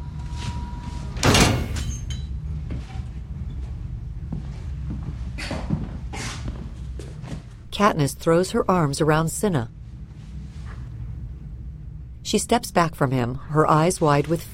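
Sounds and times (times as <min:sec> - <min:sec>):
low steady room rumble: 0:00.0 - 0:14.5
heavy metal door sliding and clanking shut: 0:01.2 - 0:02.1
speech: 0:07.8 - 0:09.8, 0:12.3 - 0:14.5.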